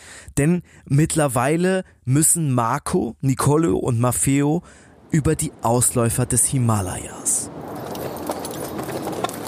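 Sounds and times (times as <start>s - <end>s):
speech: 0.4s - 7.8s
constant rushing noise: 4.6s - 9.4s
horse hooves clip-clopping on snow-covered mountain passes: 7.5s - 9.4s.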